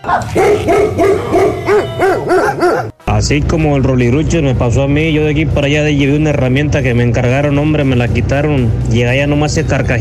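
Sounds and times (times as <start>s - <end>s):
speech: 0.0s - 1.3s, 3.2s - 10.0s
dog barking: 0.0s - 3.0s.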